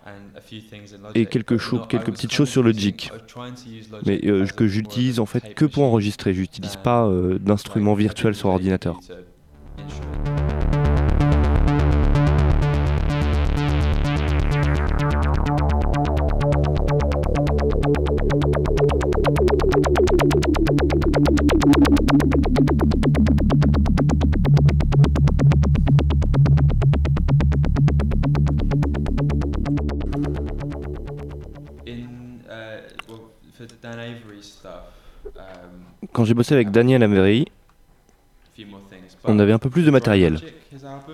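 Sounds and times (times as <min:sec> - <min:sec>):
speech: 0:00.0 - 0:10.0, 0:36.4 - 0:37.6, 0:39.2 - 0:41.1
sequenced synthesizer pattern through echo pedal: 0:09.5 - 0:32.1.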